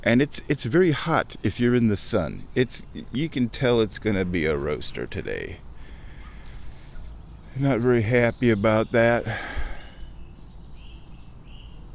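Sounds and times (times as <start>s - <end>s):
speech: 0.0s - 5.7s, 7.6s - 9.6s
faint high drawn-out bird calls near a creek: 5.8s - 11.9s.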